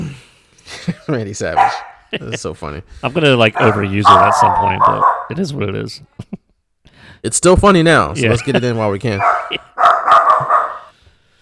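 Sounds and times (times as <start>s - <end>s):
speech: 0.9s - 6.4s, 7.0s - 10.5s
dog barking: 1.6s - 2.0s, 3.6s - 5.4s, 9.2s - 10.9s.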